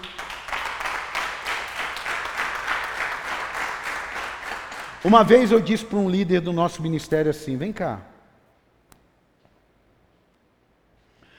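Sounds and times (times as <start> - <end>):
crowd breaking into sustained applause: 0.0 - 6.2
speech: 5.0 - 8.1.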